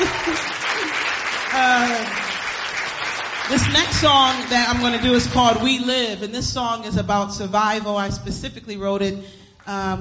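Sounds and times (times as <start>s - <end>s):
concert audience cheering: 0.0s - 4.4s
concert audience applauding: 0.0s - 5.6s
speech: 3.5s - 9.9s.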